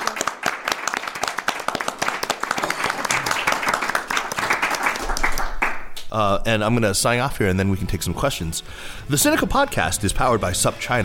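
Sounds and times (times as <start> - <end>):
audience applause: 0.0 - 5.8
speech: 6.1 - 11.0.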